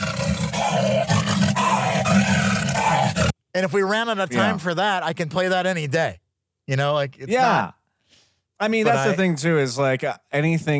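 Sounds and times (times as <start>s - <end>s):
lion roaring: 0.0s - 3.4s
speech: 3.6s - 7.8s, 8.6s - 10.7s.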